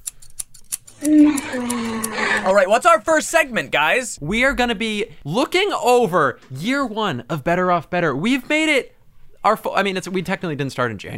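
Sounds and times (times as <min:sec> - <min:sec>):
scissors snipping: 0:00.0 - 0:02.2
speech: 0:01.0 - 0:11.1.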